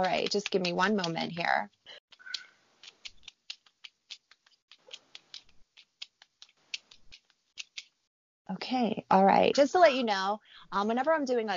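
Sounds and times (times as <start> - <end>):
speech: 0.0 - 2.0, 8.5 - 11.5
cards being shuffled and handled: 0.0 - 8.0.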